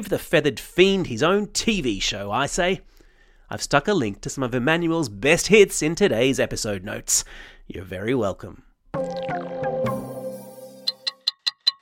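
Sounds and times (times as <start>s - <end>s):
speech: 0.0s - 2.9s, 3.5s - 9.5s
short tonal musical swell: 9.0s - 11.1s
clock ticking: 10.8s - 11.8s.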